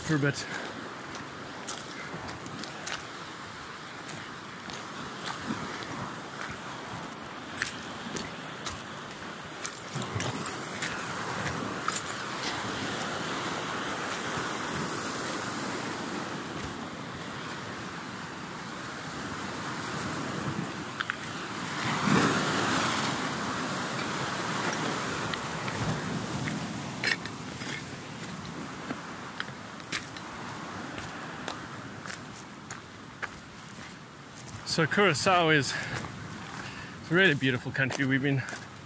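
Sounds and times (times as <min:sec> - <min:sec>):
wind buffeting the microphone: 0:00.0 - 0:34.7, 0:35.6 - 0:38.8
ocean surf washing ashore in Curaçao: 0:00.0 - 0:38.8
speech: 0:00.1 - 0:00.7, 0:34.8 - 0:36.0, 0:37.1 - 0:38.6.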